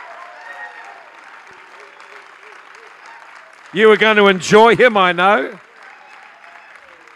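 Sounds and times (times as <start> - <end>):
large audience applauding at an evening church gathering: 0.0 - 7.1
speech: 3.7 - 5.6.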